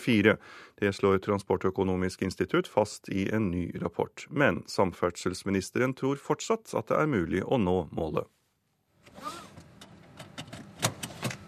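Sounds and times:
speech: 0.0s - 8.4s
car seatbelt strap sliding and rustling: 9.0s - 11.4s.

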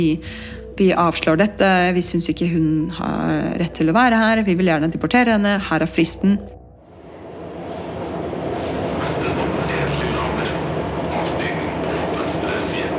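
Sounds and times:
speech: 0.0s - 6.6s
train rolling along the rails from Oslo to Lillehammer in Norway: 6.9s - 12.9s
rattling train carriage noise: 7.0s - 12.9s
brief hisses of a train: 7.3s - 10.8s.

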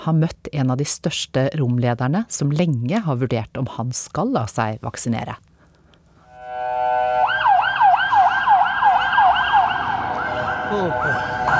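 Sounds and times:
speech: 0.0s - 5.5s, 10.7s - 11.5s
steady rumble of road traffic: 5.8s - 11.5s
ambulance siren wailing while passing: 6.4s - 11.5s.

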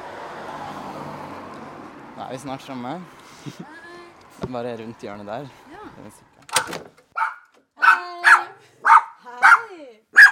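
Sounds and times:
speech: 2.2s - 6.8s
dog barking at the door of a large white house: 7.2s - 10.3s.

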